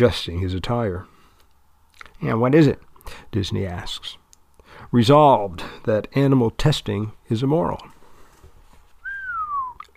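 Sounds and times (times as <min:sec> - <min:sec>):
speech: 0:00.0 - 0:01.1, 0:02.2 - 0:04.2, 0:04.8 - 0:07.9
soft human whistle gliding downward: 0:09.0 - 0:09.9.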